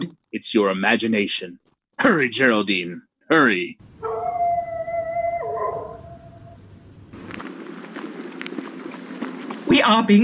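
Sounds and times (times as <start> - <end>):
speech: 0.0 - 3.9, 9.8 - 10.2
dog howling: 4.0 - 6.8.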